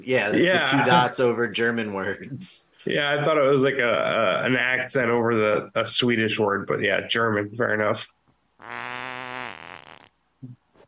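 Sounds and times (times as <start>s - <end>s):
speech: 0.0s - 8.9s
laughter: 0.1s - 6.0s
loud fart into the microphone: 8.6s - 10.8s.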